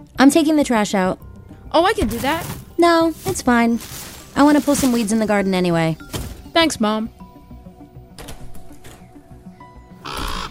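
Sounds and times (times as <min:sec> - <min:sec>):
speech: 0:00.0 - 0:07.2
bird giving harsh raspy cries outdoors: 0:09.8 - 0:10.5.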